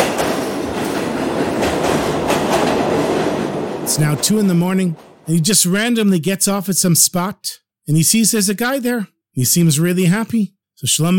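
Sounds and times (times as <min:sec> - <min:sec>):
faint subway train wheels clacking over rail joints: 0:00.0 - 0:05.8
subway train rumbling along the tracks: 0:00.0 - 0:05.9
speech: 0:03.9 - 0:11.1.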